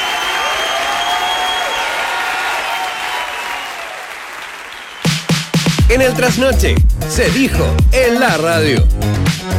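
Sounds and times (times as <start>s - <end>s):
crowd audience applause: 0.0s - 5.8s
speech: 5.9s - 9.4s.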